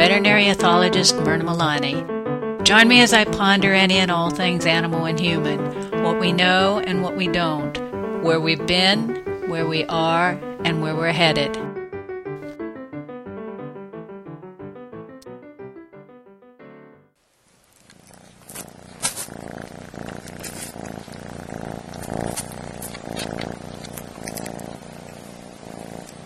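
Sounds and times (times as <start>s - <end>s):
kitten purring: 0.0s - 2.0s, 2.7s - 11.6s, 17.6s - 26.2s
music: 0.0s - 17.2s
speech: 0.1s - 11.7s.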